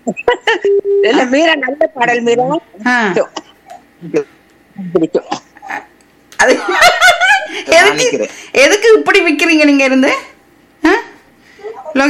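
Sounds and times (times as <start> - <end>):
person hiccuping: 0.0 - 1.4, 5.1 - 5.9
speech: 0.0 - 3.4, 4.0 - 12.0
laughter: 6.4 - 8.1.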